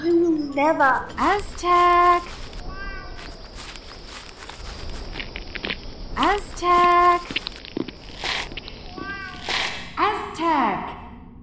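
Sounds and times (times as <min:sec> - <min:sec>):
speech: 0:00.6 - 0:02.4, 0:06.2 - 0:07.4, 0:10.0 - 0:11.0
hissy rustling noise: 0:01.1 - 0:08.8
cat meowing: 0:02.2 - 0:03.5, 0:08.9 - 0:09.9.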